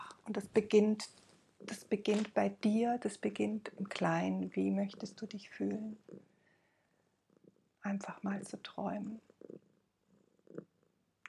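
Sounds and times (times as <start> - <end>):
speech: 0.3 - 6.3, 7.8 - 9.6
cat purring: 3.1 - 11.2.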